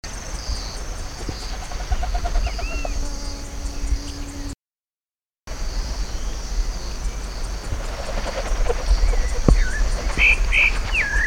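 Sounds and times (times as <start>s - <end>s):
Cypseloides senex calling: 0.1s - 4.6s, 6.0s - 11.2s.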